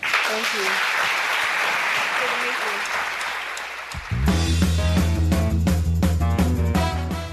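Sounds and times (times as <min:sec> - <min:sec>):
audience applause after a panel discussion: 0:00.0 - 0:04.4
speech: 0:00.3 - 0:01.2, 0:02.2 - 0:03.2
music: 0:04.0 - 0:07.3.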